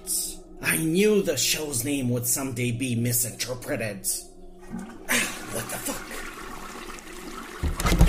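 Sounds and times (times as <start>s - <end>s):
speech: 0.7s - 5.0s
toilet flushing: 4.6s - 8.0s.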